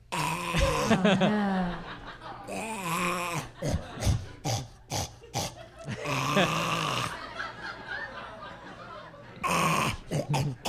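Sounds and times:
laughter: 0.6s - 10.6s
person imitating a pug's snuffly grunts and snorts: 2.5s - 7.2s, 9.4s - 10.6s.

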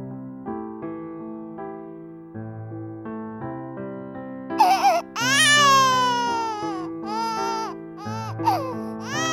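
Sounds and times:
piano melody with sustained chords: 0.0s - 9.3s
infant wailing: 4.6s - 9.3s.

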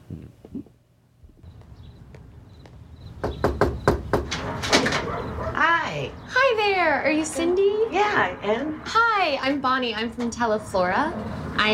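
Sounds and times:
knocking on a front door: 3.2s - 5.0s
speech: 6.0s - 11.7s.

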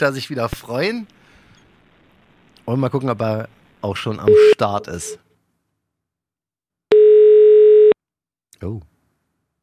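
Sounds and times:
speech: 0.0s - 1.2s, 2.7s - 5.2s, 8.6s - 8.9s
telephone ringing tone while placing a call: 4.3s - 5.2s, 6.9s - 8.0s.

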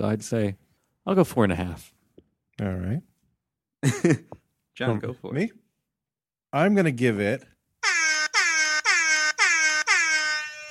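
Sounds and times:
speech: 0.0s - 2.0s, 2.6s - 3.1s, 3.8s - 5.6s, 6.5s - 7.5s
air horn blasts: 7.8s - 10.6s.

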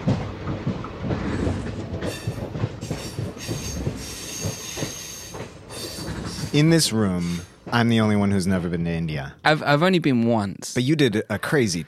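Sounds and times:
rhythmic train wheel clatter: 0.0s - 9.0s
Indian Railway passenger train rolling on rails in India: 0.0s - 10.4s
speech: 6.6s - 11.8s.

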